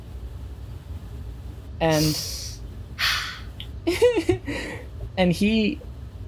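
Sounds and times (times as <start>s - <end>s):
speech: 1.8s - 2.4s, 5.2s - 5.9s
person imitating a man intensely sniffing the air: 1.9s - 3.6s
short wavering vocal sound: 1.9s - 3.6s.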